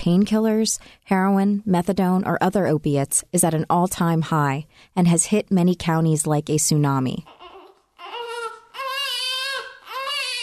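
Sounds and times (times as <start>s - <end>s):
speech: 0.0s - 7.4s
newborn baby suffering opioid withdrawal crying: 7.2s - 10.4s.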